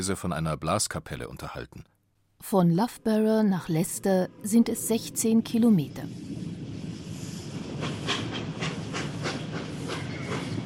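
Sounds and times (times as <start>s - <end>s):
speech: 0.0s - 6.4s
steam locomotive rumbling pulling into a station: 3.8s - 10.6s
steam locomotive rhythmic hissing chuffs: 6.9s - 10.6s.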